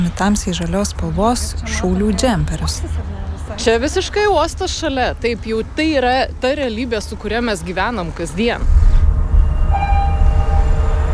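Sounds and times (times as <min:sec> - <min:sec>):
freight train rumbling past beside a cargo terminal at the port of Klaipėda: 0:00.0 - 0:11.1
speech: 0:00.1 - 0:08.8
thin faint horn-like tone: 0:09.3 - 0:11.1.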